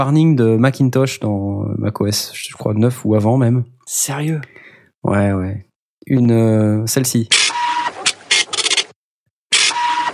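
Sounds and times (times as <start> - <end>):
speech: 0.0 - 7.4
dot matrix needle printer printing: 7.3 - 8.9, 9.5 - 10.1.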